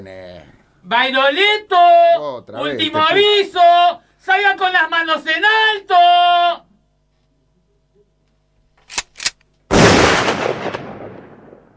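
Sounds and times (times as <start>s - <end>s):
speech: 0.0s - 6.6s
sharp gunshots during a police shootout: 8.9s - 11.7s
booming gunshot with rolling echo during a police shootout: 9.7s - 11.7s.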